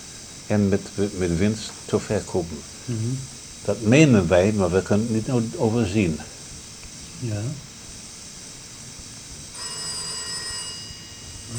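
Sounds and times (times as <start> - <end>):
low hum: 0.0 - 11.5
speech: 0.5 - 6.4, 7.2 - 7.7
telephone ringing with a metallic bell tone: 9.6 - 11.5.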